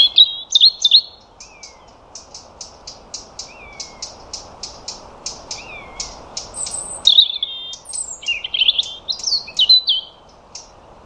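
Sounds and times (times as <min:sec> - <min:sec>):
European robin giving sharp ticks: 0:00.0 - 0:11.0
background hiss: 0:00.0 - 0:11.0.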